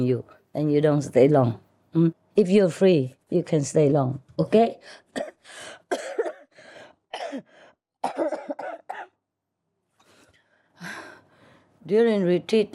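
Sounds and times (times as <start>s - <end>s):
speech: 0.0s - 6.2s, 11.9s - 12.7s
harsh coughing in quick clusters: 5.1s - 6.5s, 7.1s - 9.2s.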